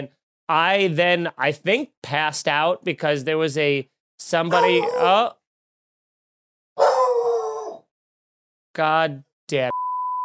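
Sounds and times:
speech: 0.0 - 5.4, 8.8 - 9.8
dog howling: 4.5 - 5.3, 6.8 - 7.9.

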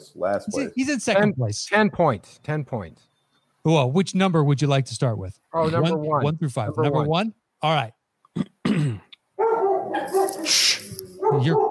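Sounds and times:
speech: 0.1 - 9.0, 11.3 - 11.6
dog barking, yelping and whining: 9.4 - 11.6.

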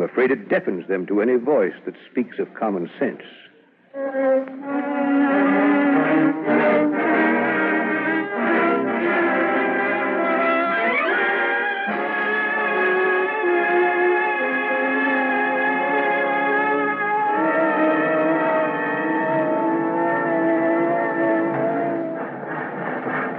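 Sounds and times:
speech: 0.0 - 5.3
train whistle blaring with a rich chord of tones: 4.7 - 22.5.

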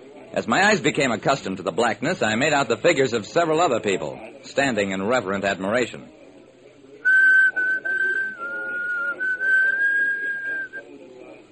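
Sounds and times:
faint low murmur of noise: 0.0 - 11.5
speech: 0.3 - 6.2
low almost tuneless whistling: 7.0 - 10.8.

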